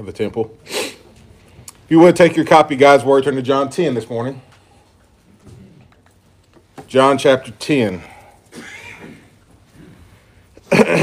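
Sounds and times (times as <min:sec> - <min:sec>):
speech: 0:00.0 - 0:00.8, 0:01.9 - 0:04.5, 0:06.9 - 0:08.7
sharp loud cough: 0:08.5 - 0:09.2, 0:10.6 - 0:11.0.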